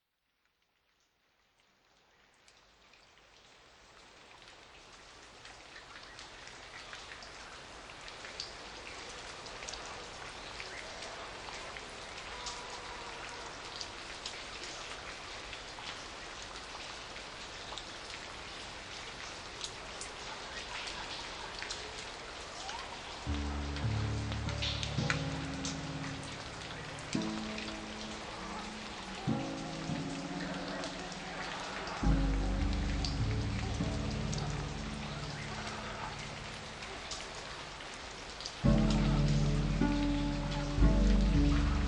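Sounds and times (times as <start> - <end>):
tropical rainforest zen spa music: 23.3 - 37.0, 38.6 - 41.8.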